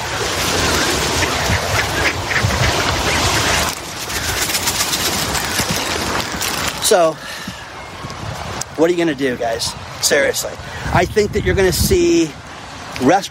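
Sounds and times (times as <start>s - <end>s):
crowd of ducks quacking while being fed: 0.1s - 6.4s
speech: 6.9s - 7.4s, 8.8s - 12.4s, 13.0s - 13.2s.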